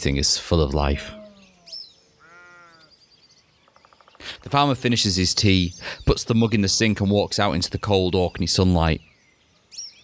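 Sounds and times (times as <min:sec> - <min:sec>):
speech: 0:00.0 - 0:01.2, 0:04.4 - 0:09.1
cows bleating on a summertime Orkney farm: 0:00.8 - 0:02.9.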